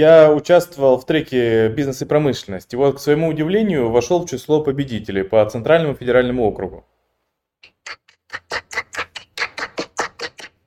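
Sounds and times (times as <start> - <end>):
speech: 0.0 - 6.9
sharp hand claps in a steady even rhythm: 7.7 - 10.6.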